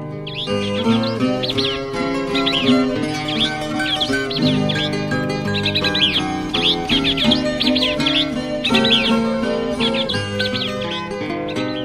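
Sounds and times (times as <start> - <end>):
forest birds trilling and chirping: 0.0 - 11.8
instrumental music: 0.0 - 11.8.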